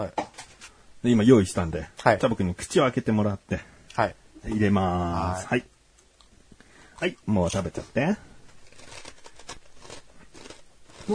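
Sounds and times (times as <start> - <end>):
speech: 0.0 - 0.2, 1.0 - 5.7, 7.0 - 8.3
nori-salt flavored konjac chips being chewed: 8.6 - 11.1.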